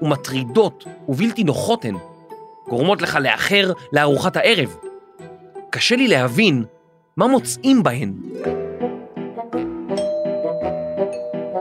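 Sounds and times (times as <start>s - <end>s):
speech: 0.0s - 2.1s, 2.7s - 4.8s, 5.7s - 8.6s
chiming doorbell ringing: 9.9s - 11.5s.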